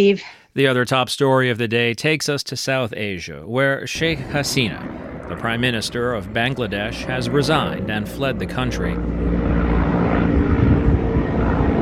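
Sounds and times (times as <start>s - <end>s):
speech: 0.0s - 9.4s
helicopter engine and rotor roar flying over a city: 4.0s - 11.8s.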